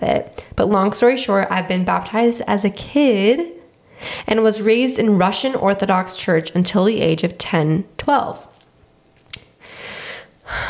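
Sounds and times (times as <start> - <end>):
speech: 0.0 - 8.5
heavy breathing: 3.8 - 4.3, 9.6 - 10.6.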